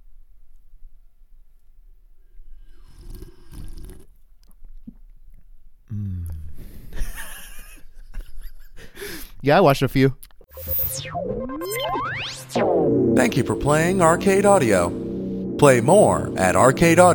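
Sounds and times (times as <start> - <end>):
sipping beer: 2.7 - 4.1, 5.9 - 6.6
swallowing: 2.8 - 5.1
smacking mouth noises: 5.9 - 6.6
speech: 9.4 - 10.2, 12.9 - 15.0, 15.6 - 17.1.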